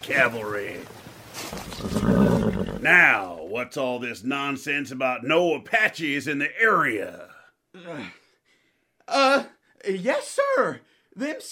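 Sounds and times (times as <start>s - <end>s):
speech: 0.0s - 8.2s, 9.1s - 11.5s
horse neighing: 1.4s - 3.3s.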